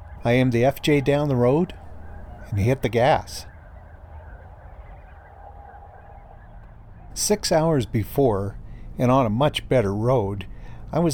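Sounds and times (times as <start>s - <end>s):
huge flock of snow geese honking and yelping: 0.0s - 8.2s
speech: 0.2s - 1.8s, 2.5s - 3.5s, 7.2s - 11.1s.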